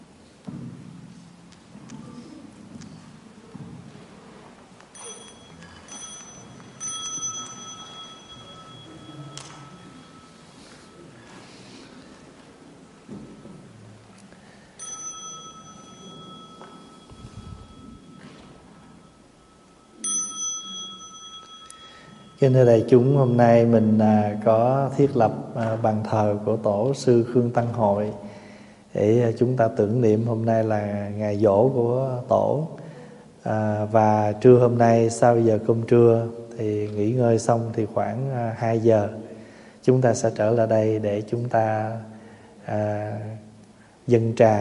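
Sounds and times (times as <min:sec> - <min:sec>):
bell ringing: 0:04.9 - 0:11.4, 0:14.7 - 0:23.8
speech: 0:22.4 - 0:28.2, 0:29.0 - 0:32.8, 0:33.4 - 0:39.2, 0:39.8 - 0:43.4, 0:44.1 - 0:44.5.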